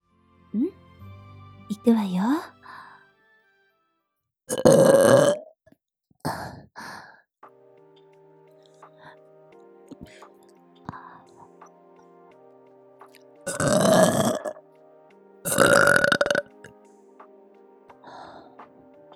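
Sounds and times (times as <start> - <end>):
speech: 0.5 - 0.8, 1.7 - 2.6
woman burping: 4.5 - 5.5, 13.5 - 14.6, 15.5 - 16.5.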